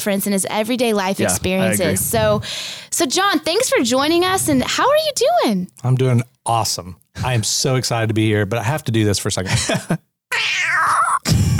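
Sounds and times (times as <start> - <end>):
speech: 0.0 - 10.1
person imitating a cat meow: 10.3 - 11.2.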